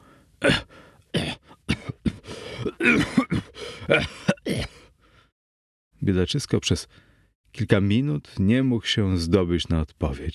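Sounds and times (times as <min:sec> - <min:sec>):
prolonged harsh coughing fit: 0:00.0 - 0:04.9
speech: 0:00.4 - 0:01.4, 0:02.8 - 0:03.3, 0:03.9 - 0:04.2, 0:06.1 - 0:10.3
throat-clearing: 0:00.4 - 0:04.8.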